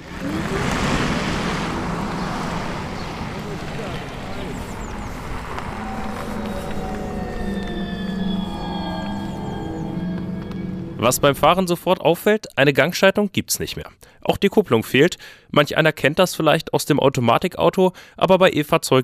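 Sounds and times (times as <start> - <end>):
road and wind noise of a driving electric car: 0.0 - 11.6
thin high electric car motor whine climbing in pitch: 0.0 - 11.6
speech: 11.0 - 19.0.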